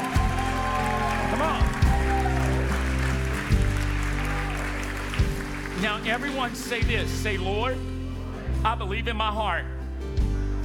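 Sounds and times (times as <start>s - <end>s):
audience shouting: 0.0s - 3.2s, 3.8s - 5.0s
audience cheering: 0.0s - 7.0s
sustained organ-like music: 0.0s - 10.6s
speech: 6.0s - 7.9s, 8.6s - 9.8s.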